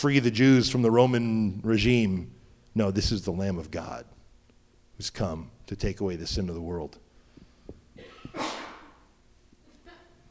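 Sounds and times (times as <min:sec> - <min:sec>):
speech: 0:00.0 - 0:04.2, 0:05.0 - 0:07.0
person sneezing: 0:08.0 - 0:09.1.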